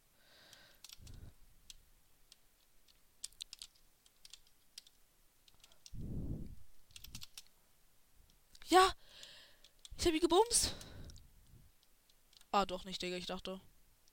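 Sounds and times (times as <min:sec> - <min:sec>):
computer keyboard keys and space bar pressed during a video game: 0:00.5 - 0:06.0, 0:06.8 - 0:07.5
speech: 0:08.7 - 0:09.0, 0:10.0 - 0:10.9, 0:12.5 - 0:13.7.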